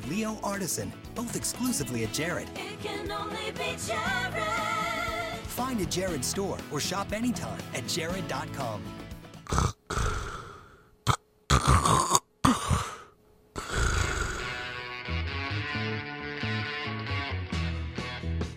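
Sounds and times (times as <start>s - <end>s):
steady musical backing: 0.0s - 9.4s, 14.5s - 18.5s
speech: 0.1s - 4.8s, 5.6s - 9.7s
loud harsh snoring during sleep: 9.5s - 12.2s, 13.6s - 14.9s
choking gasps during sleep: 9.5s - 14.7s.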